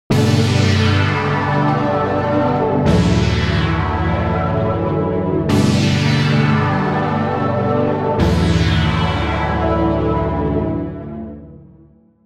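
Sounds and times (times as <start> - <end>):
analog-style synthesizer: 0.1 - 12.2.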